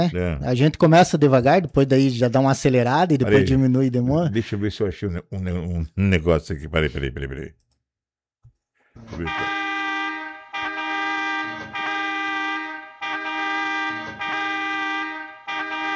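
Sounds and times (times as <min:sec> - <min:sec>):
speech: 0:00.0 - 0:07.6, 0:09.0 - 0:09.6
brassy multi-tone horn sound effect blasts: 0:09.1 - 0:15.9.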